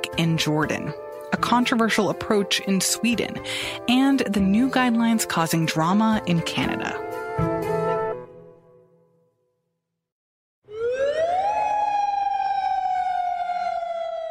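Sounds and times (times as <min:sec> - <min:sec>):
speech: 0:00.1 - 0:07.5
curfew air-raid alarm siren in Jordan: 0:10.6 - 0:14.2.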